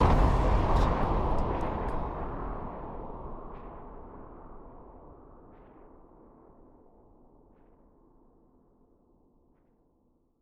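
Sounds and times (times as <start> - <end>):
wind blast explosion: 0.0 - 6.0.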